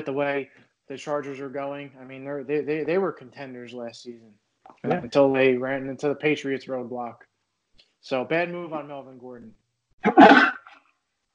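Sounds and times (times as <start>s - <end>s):
speech: 0.0s - 7.3s, 8.0s - 10.5s
person sneezing: 10.1s - 10.7s.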